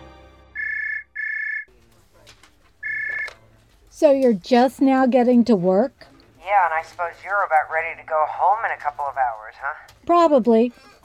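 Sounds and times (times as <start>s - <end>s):
telephone ringing in electronic trills: 0.6s - 1.7s, 2.8s - 3.4s
speech: 4.0s - 10.9s.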